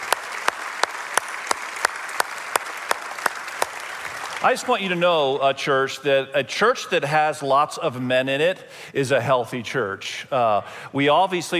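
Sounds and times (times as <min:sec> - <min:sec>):
pair of hands clapping in a regular beat: 0:00.0 - 0:04.5
audience applauding: 0:00.0 - 0:05.0
speech: 0:04.4 - 0:11.5.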